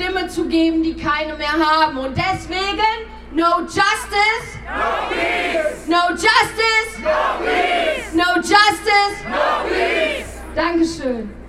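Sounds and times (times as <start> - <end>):
speech: 0.3 - 11.4
large crowd of protesters chanting a protest slogan in unison: 4.7 - 5.9, 6.8 - 10.6.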